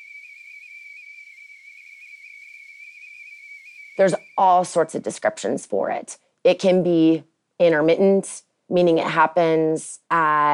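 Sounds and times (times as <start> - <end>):
tea kettle whistle simulating tinnitus: 0.0 - 4.8
speech: 4.0 - 10.5.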